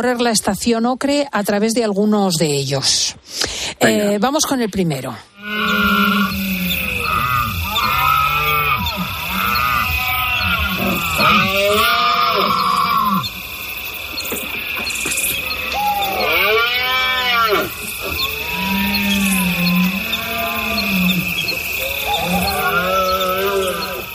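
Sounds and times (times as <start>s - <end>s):
speech: 0.0s - 6.0s
steady high hiss: 5.2s - 24.1s
red deer stags bellowing during the autumn rut: 5.4s - 13.4s, 15.4s - 24.1s
tawny owl calling: 5.4s - 24.1s.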